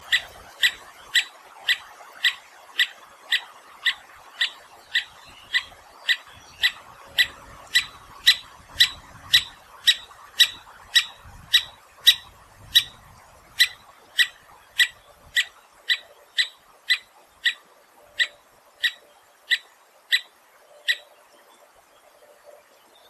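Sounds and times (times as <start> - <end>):
three-toed woodpecker deep jerky call: 0.0 - 13.0, 13.6 - 21.2.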